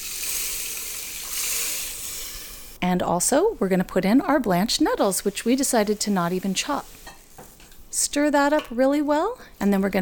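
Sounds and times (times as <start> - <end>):
vegetable stock pouring into a soup pot of rice and dandelion greens: 0.0 - 2.6
speech: 2.8 - 7.0, 8.0 - 9.9.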